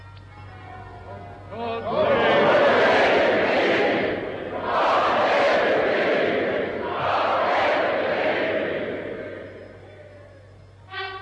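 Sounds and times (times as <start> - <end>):
large crowd of spectators cheering and roaring: 1.8 - 10.6.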